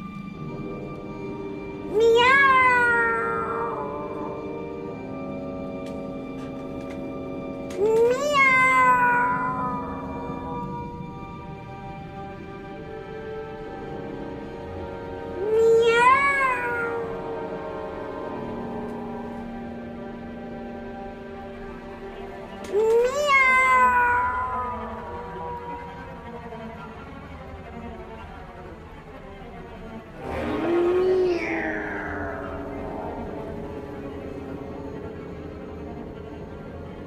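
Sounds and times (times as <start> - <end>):
kitten giving thin high-pitched meows: 1.9 - 4.5, 7.7 - 11.1, 15.4 - 17.6, 22.7 - 26.7, 30.3 - 34.6.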